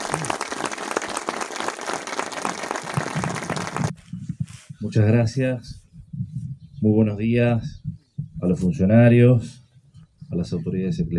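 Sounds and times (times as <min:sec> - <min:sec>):
audience applause: 0:00.0 - 0:04.0
speech: 0:04.8 - 0:05.8, 0:06.8 - 0:07.8, 0:08.5 - 0:09.6, 0:10.3 - 0:11.1.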